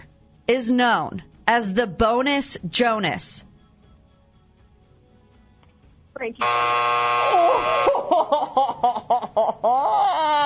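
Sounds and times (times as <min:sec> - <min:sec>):
speech: 0:00.5 - 0:03.5, 0:06.2 - 0:09.0
game show buzzer: 0:06.4 - 0:08.3
people laughing: 0:07.3 - 0:10.2.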